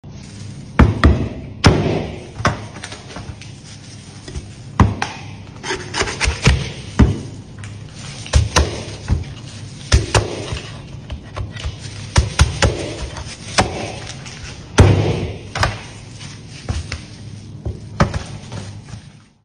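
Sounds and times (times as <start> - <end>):
meat being chopped: 0.8 - 2.9, 6.0 - 7.4, 8.3 - 9.1, 9.9 - 15.9.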